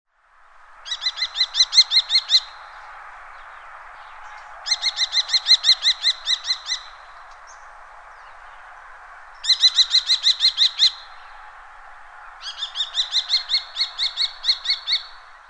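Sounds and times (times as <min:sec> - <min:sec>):
common kestrel calling: 0:00.8 - 0:02.8, 0:04.3 - 0:08.4, 0:09.4 - 0:11.3, 0:12.4 - 0:15.4.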